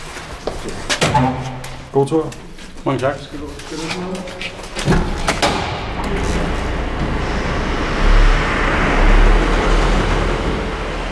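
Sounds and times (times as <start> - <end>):
speech: 0.6 - 5.1
prison transport van rolling out through an opening gate: 5.0 - 11.1.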